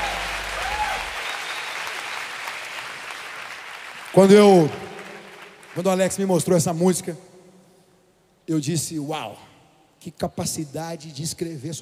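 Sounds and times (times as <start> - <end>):
audience applause: 0.0 - 6.0
speech: 4.1 - 4.8, 5.8 - 7.3, 8.5 - 11.7.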